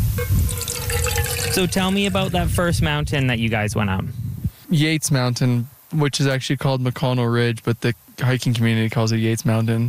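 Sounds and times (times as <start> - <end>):
water pouring into a container: 0.2 - 2.5
speech: 1.5 - 9.8.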